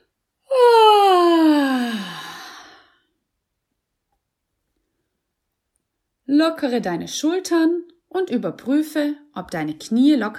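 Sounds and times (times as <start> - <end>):
person yawning and sighing during a singing warm-up: 0.4 - 3.2
speech: 6.4 - 10.3.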